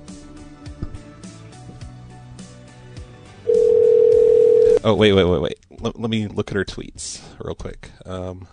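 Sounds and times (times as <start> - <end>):
telephone dial tone as a call is made to a cell phone: 3.5 - 4.8
speech: 4.8 - 8.5.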